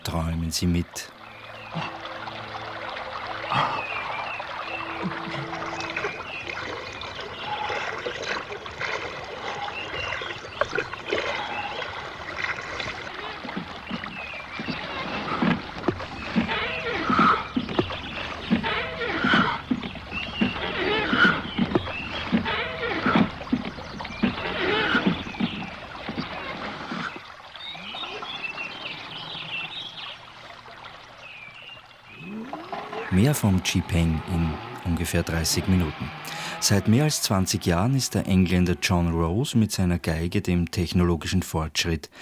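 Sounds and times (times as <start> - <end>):
river water rushing with gurgling and splashing: 0.0 - 40.6
speech: 0.1 - 2.0, 3.5 - 3.9, 33.3 - 42.2.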